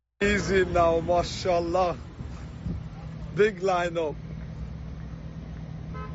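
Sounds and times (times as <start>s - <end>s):
cars moving along a road: 0.2s - 6.1s
speech: 0.5s - 2.1s, 3.4s - 4.2s
short car horn toot: 5.9s - 6.1s.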